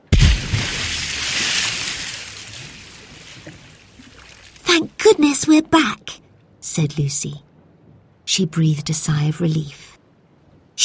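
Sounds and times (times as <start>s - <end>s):
anchor plunging into water over ship's side: 0.0s - 4.3s
water sloshing and churning: 0.0s - 5.0s
speech: 4.8s - 7.5s, 8.3s - 9.9s.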